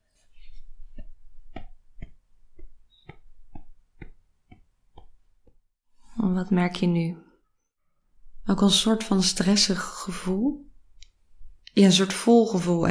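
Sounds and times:
legs tapping a surface: 0.2s - 5.6s
speech: 6.2s - 7.2s, 8.5s - 10.7s, 11.8s - 12.8s.

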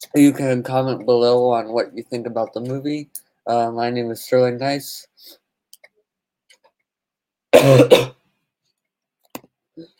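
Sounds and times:
speech: 0.1s - 5.4s, 7.6s - 8.2s
harsh two-part cough: 7.5s - 8.2s.

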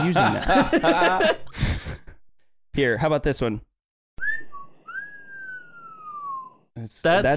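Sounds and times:
speech: 0.0s - 1.6s, 2.8s - 3.7s, 6.8s - 7.3s
laughter: 0.0s - 2.2s
admiring wolf whistle sound effect: 4.2s - 6.7s.

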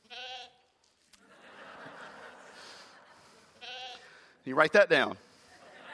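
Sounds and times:
sheep bleating: 0.0s - 0.6s, 3.6s - 4.1s
people laughing: 1.2s - 3.6s, 5.3s - 5.9s
speech: 4.4s - 5.2s.

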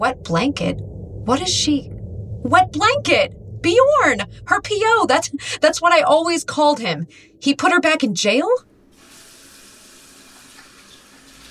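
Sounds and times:
speech: 0.0s - 8.7s
tap water running into a sink: 8.9s - 11.5s.

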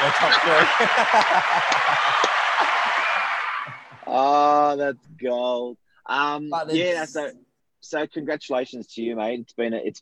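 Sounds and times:
people chuckling: 0.0s - 2.8s
speech: 0.0s - 3.0s, 4.1s - 10.0s
audience applauding an award win: 0.0s - 4.1s.

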